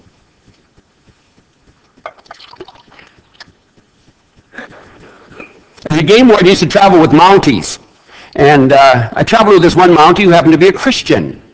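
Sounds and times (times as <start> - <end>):
water pouring into a glass: 2.1 - 3.0
speech: 6.0 - 7.8, 8.4 - 11.4.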